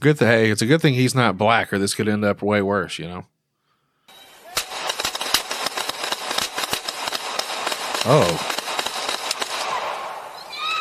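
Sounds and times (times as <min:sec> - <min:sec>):
speech: 0:00.0 - 0:03.3, 0:08.0 - 0:08.6
gunshots fired during a police encounter: 0:04.5 - 0:10.4.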